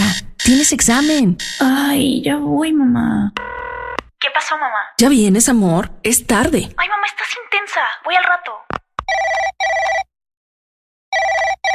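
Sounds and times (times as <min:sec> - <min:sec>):
telephone ringing with double electronic trills: 0:00.0 - 0:01.8, 0:03.4 - 0:04.0, 0:09.1 - 0:10.1, 0:11.1 - 0:11.7
speech: 0:00.5 - 0:03.5, 0:04.5 - 0:10.1.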